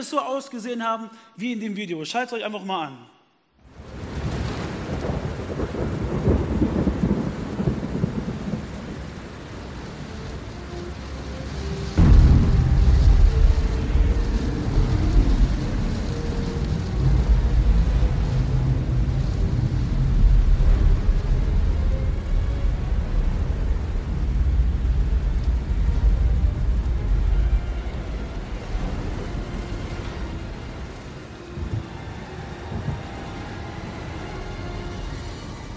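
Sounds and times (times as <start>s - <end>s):
speech: 0.0s - 3.2s
heavy rain and wind of a violent thunderstorm on a lake: 3.6s - 35.7s
loud thunderclap rolling into deep rumble: 3.8s - 9.8s, 11.9s - 34.0s.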